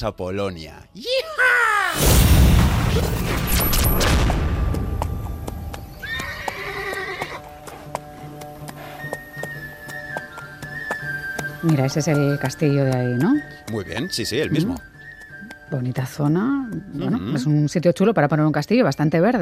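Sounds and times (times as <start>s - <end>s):
speech: 0.0s - 1.4s, 2.0s - 4.4s, 11.6s - 14.9s, 15.7s - 19.3s
horse hoof clops: 4.6s - 17.6s
horse neighing: 6.0s - 7.5s.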